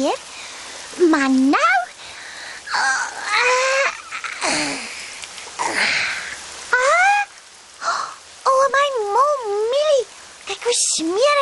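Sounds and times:
speech: 0.0 - 0.3, 1.0 - 1.8, 10.7 - 11.4
rain falling and splashing in puddles: 0.0 - 11.4
young child squealing and babbling: 2.7 - 4.9, 6.7 - 7.4.

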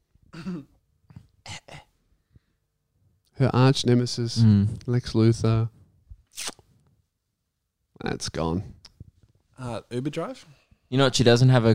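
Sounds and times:
person coughing harshly: 0.3 - 0.8
speech: 3.4 - 5.8, 8.2 - 8.8, 9.6 - 11.7.

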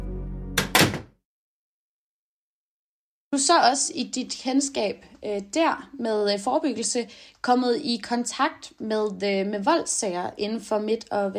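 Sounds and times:
hospital single-room door shutting with solid thuds: 0.6 - 1.2
speech: 3.3 - 11.3.

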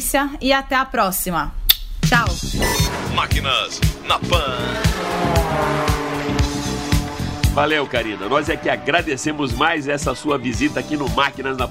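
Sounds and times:
speech: 0.0 - 6.0, 7.6 - 11.6
racing superbike engine accelerating and revving hard: 2.5 - 11.0.

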